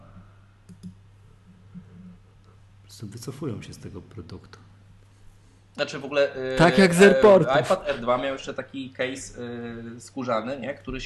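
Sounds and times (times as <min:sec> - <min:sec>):
low steady electrical hum: 0:00.0 - 0:11.0
soft computer mouse clicks selecting iPad models: 0:00.7 - 0:01.0
speech: 0:03.0 - 0:04.7, 0:05.8 - 0:11.0.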